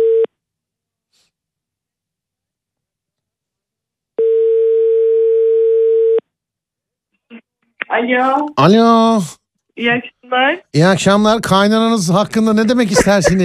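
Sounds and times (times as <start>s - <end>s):
telephone ringback tone: 4.2s - 6.2s
speech: 8.0s - 13.4s
laughter: 12.4s - 13.4s.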